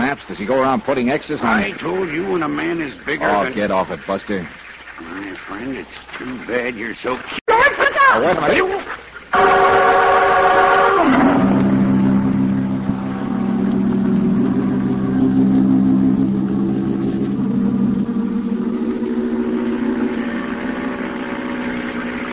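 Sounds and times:
speech: 0.1s - 7.4s, 8.1s - 9.8s
laughter: 7.5s - 8.7s
boat outboard motor running: 9.3s - 22.3s.

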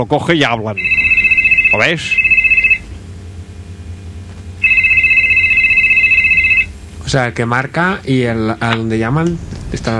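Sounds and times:
speech: 0.0s - 1.0s, 1.7s - 2.3s, 7.1s - 9.9s
telephone ringing with a bright trilling electronic tone: 0.6s - 7.0s.

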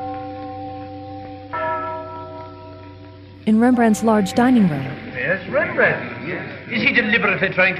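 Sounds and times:
church tower bells tolling: 1.5s - 5.1s
speech: 3.4s - 7.7s.

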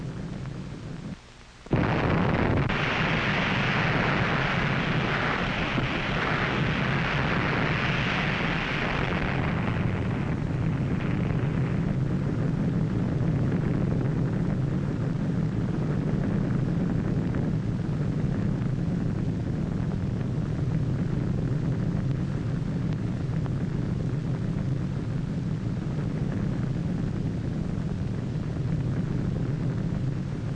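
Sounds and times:
nuclear blast roar among a target fleet of ships from archival footage: 1.7s - 30.5s.

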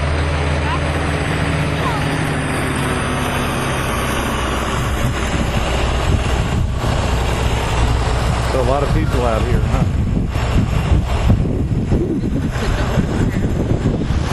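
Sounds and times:
big bus engine idling at a busy farm: 0.0s - 14.3s
speech: 8.8s - 10.0s.

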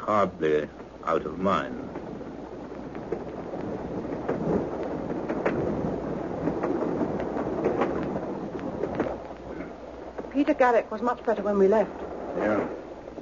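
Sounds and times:
express train to London in motion: 0.0s - 13.1s
speech: 0.1s - 1.9s, 10.4s - 12.8s
sharp rattles and clicks: 1.7s - 10.5s.

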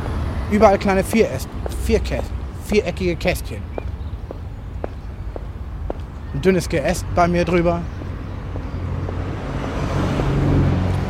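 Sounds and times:
speech: 0.5s - 3.8s, 6.4s - 8.0s
car passing by on road: 8.8s - 11.0s.

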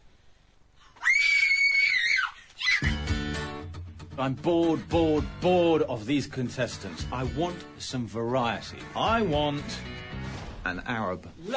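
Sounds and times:
person screaming with excitement: 1.0s - 3.1s
speech: 4.2s - 9.9s, 10.6s - 11.5s.

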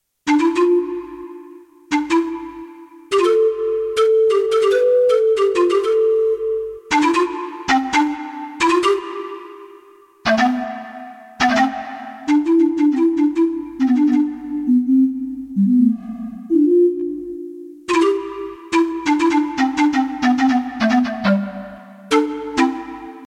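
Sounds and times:
synthesized pan flute: 0.2s - 23.2s.

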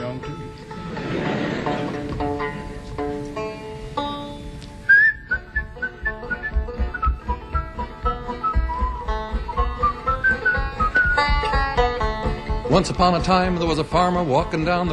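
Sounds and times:
light musical accompaniment: 0.0s - 14.9s
laughter: 0.7s - 2.4s
person whistling a cheerful melody: 4.9s - 11.4s
speech: 12.8s - 14.9s.

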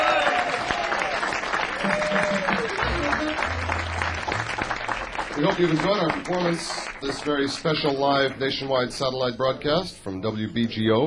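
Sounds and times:
audience applauding: 0.0s - 8.5s
speech: 5.4s - 11.0s.

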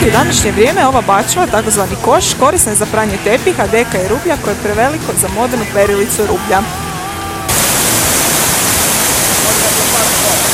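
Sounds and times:
speech: 0.0s - 6.9s
large waterfall roaring: 7.1s - 10.5s.

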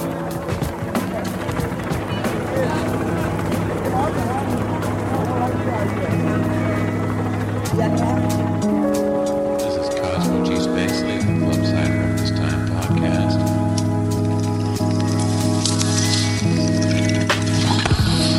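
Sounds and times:
helicopters flying overhead: 0.0s - 18.3s
indistinct voices murmuring: 0.0s - 18.3s
speech: 7.8s - 8.4s.

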